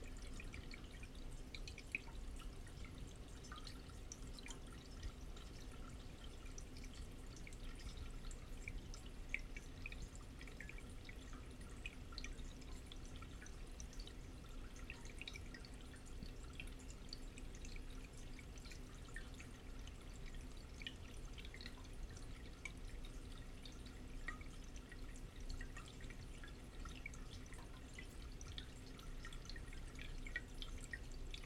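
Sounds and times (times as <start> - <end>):
water flowing in bathroom pipes: 0.0 - 31.4.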